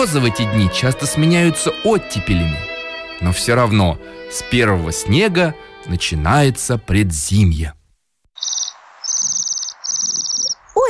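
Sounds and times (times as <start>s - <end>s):
speech: 0.0s - 7.8s
Bohemian waxwings trilling calls: 8.4s - 10.8s.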